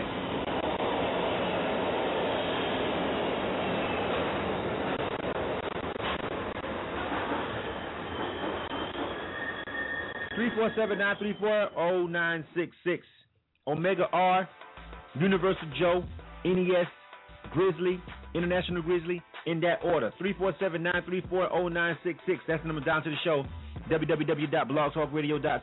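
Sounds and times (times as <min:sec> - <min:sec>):
subway train passing: 0:00.0 - 0:12.4
subway train metallic wheel screeching: 0:06.8 - 0:11.8
speech: 0:10.4 - 0:25.6.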